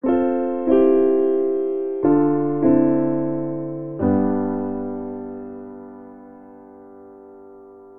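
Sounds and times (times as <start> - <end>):
MIDI grand piano playing a waltz chord progression in C major: 0.0 - 7.9.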